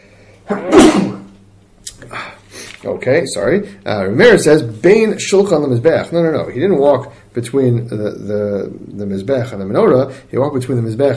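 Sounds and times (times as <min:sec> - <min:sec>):
loud sneeze: 0:00.5 - 0:01.4
speech: 0:02.8 - 0:11.1.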